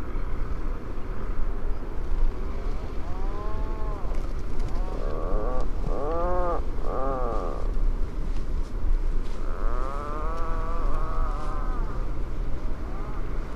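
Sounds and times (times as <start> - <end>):
steady heavy low-pitched background roar: 0.0 - 13.5
Atlantic puffin Fratercula arctica groaning calls: 2.8 - 7.9, 9.2 - 12.1.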